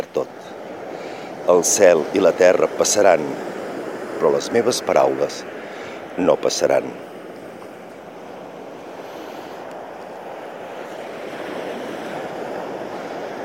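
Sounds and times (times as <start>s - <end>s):
sea waves washing onto the shore: 0.0s - 13.4s
wind: 0.0s - 13.4s
speech: 1.5s - 3.6s, 4.2s - 5.6s, 6.2s - 7.1s.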